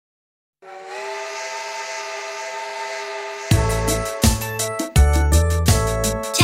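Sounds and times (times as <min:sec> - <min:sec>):
steam train whistle: 0:00.6 - 0:05.0
steam train chugging: 0:00.6 - 0:06.4.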